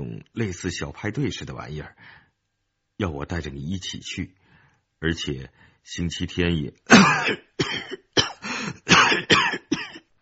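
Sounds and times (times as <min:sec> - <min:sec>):
speech: 0:00.2 - 0:02.2, 0:03.0 - 0:04.4, 0:05.0 - 0:08.0
man coughing harshly: 0:06.9 - 0:10.1.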